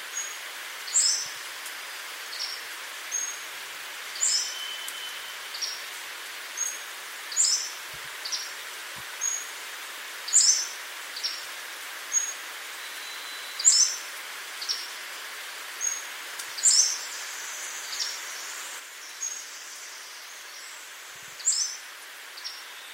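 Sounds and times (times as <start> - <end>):
forest hiss: 0.0 - 22.9
Pacific Slope Flycatcher song and call notes: 0.1 - 3.5, 4.1 - 5.9, 6.6 - 8.5, 10.3 - 11.4, 12.1 - 15.0, 15.8 - 20.8, 21.4 - 22.9.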